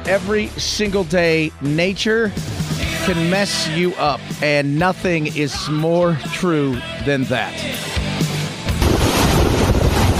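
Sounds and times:
speech: 0.1 - 7.9
powerful hurricane winds buffeting the microphone: 8.8 - 10.1.

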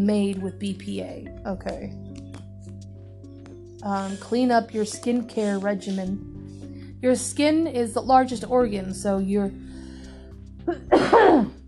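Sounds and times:
speech: 0.0 - 2.1, 3.8 - 6.3, 7.0 - 9.6, 10.6 - 11.6
person coughing: 10.7 - 11.6.

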